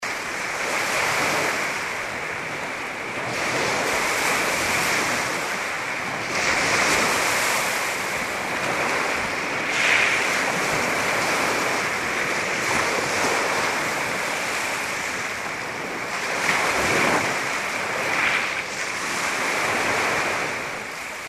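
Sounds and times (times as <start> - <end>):
Lake Superior shore: 0.0 - 21.2.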